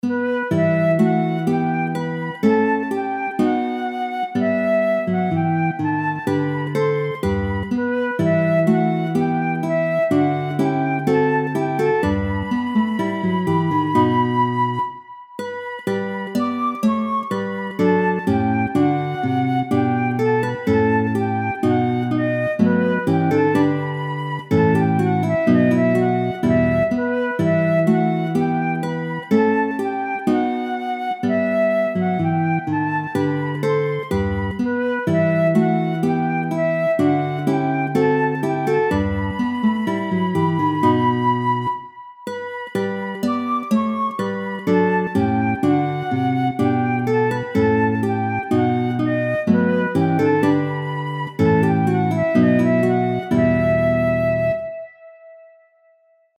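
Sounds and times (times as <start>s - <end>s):
folk tune in 6th comma meantone tuning: 0.0s - 56.0s.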